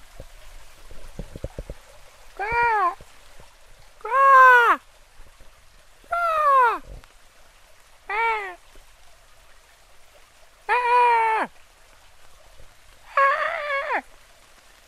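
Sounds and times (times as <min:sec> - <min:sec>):
faint patter and ticks: 0:00.0 - 0:04.1, 0:04.8 - 0:06.1, 0:06.8 - 0:10.7, 0:11.5 - 0:13.1, 0:14.0 - 0:14.8
person imitating otter calls outdoors in the countryside: 0:02.4 - 0:03.0, 0:04.0 - 0:04.8, 0:06.1 - 0:06.9, 0:08.1 - 0:08.6, 0:10.7 - 0:11.5, 0:13.1 - 0:14.1.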